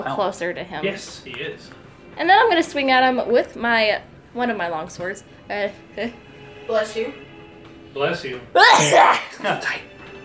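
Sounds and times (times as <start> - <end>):
speech: 0.0 - 7.2, 7.9 - 9.9
person sneezing: 8.6 - 9.4.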